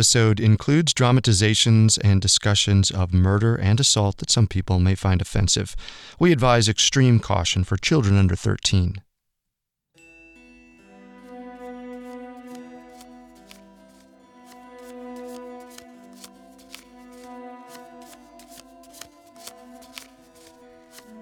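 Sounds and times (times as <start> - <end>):
speech: 0.0 - 9.1
steady droning musical tone: 10.0 - 21.1
deck of cards being shuffled for a fortune reading: 11.9 - 21.1.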